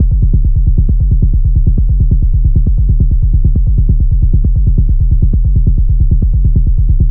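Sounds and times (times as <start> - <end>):
techno bass loop in D at 135 bpm: 0.0 - 7.0.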